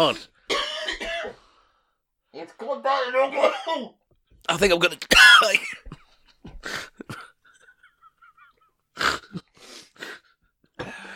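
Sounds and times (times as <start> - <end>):
speech: 0.0 - 0.3, 2.3 - 5.9, 6.6 - 7.3
person coughing harshly from a tickle in the throat: 0.5 - 1.4, 3.4 - 3.9, 5.1 - 9.5, 10.8 - 11.1
faint wheezy breathing: 1.3 - 2.0, 6.5 - 7.4, 9.0 - 11.1.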